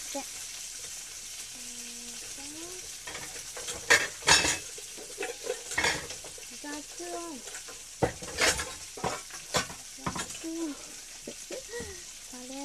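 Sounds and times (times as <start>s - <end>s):
spare ribs sizzling in a frying pan: 0.0s - 12.6s
speech: 0.1s - 0.4s
utensil clinking and scraping against a frying pan: 3.0s - 10.5s.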